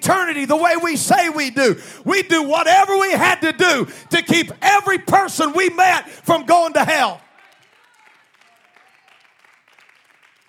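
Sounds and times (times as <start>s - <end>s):
speech: 0.3s - 7.2s
audience clapping hands: 6.7s - 10.4s.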